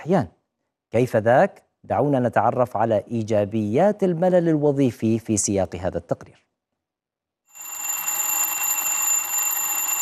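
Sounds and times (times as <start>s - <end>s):
speech: 0.0s - 6.4s
alarm clock ringing: 7.5s - 9.9s.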